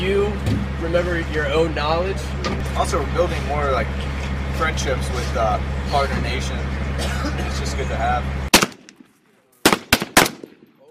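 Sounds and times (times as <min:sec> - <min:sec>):
speech: 0:00.8 - 0:08.4
AK-47 rifles firing automatic bursts during live-fire training: 0:08.5 - 0:10.7.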